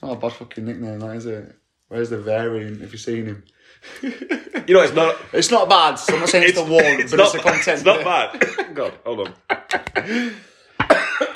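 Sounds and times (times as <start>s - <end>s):
speech: 0.1s - 10.5s
laughter: 3.8s - 10.5s
person coughing after drinking vodka: 7.4s - 9.0s, 10.8s - 11.3s.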